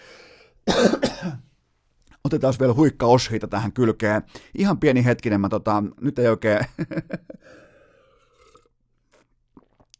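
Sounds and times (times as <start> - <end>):
soft breath: 0.0 - 0.6, 7.4 - 8.4
rough throaty cough: 0.7 - 1.4
speech: 0.8 - 1.5, 2.3 - 7.6
laughter: 6.6 - 7.4.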